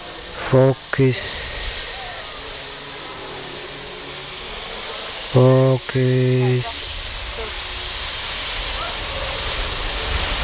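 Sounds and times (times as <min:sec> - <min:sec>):
continuous even hiss: 0:00.0 - 0:10.4
person singing along: 0:00.4 - 0:02.8, 0:05.3 - 0:06.8
speech: 0:00.5 - 0:01.5, 0:05.4 - 0:06.8.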